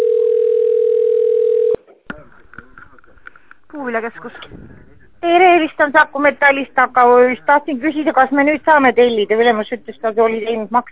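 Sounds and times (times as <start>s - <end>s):
telephone line tone while caller is on hold: 0.0s - 1.8s
speech: 3.8s - 10.8s.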